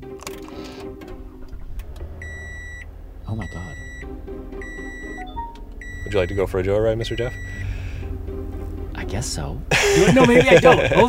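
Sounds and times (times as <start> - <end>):
car engine cranking via push start button: 0.0 - 11.0
speech: 3.3 - 4.8, 6.0 - 7.7, 9.1 - 11.0
car electronic chime tone: 3.4 - 6.6
laughter: 9.7 - 11.0.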